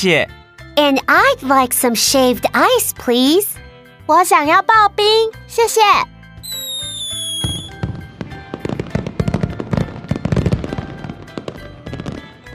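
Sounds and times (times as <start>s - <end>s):
speech: 0.0s - 6.1s
fireworks whistling: 6.4s - 10.6s
fireworks exploding: 6.5s - 12.5s.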